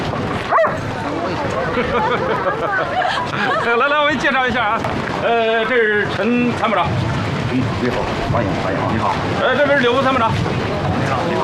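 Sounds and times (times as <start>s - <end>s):
crowd chatter and voices: 0.0s - 11.4s
sharp high-pitched dog bark: 0.5s - 0.8s
laughter: 1.4s - 4.5s
speech: 1.8s - 11.4s.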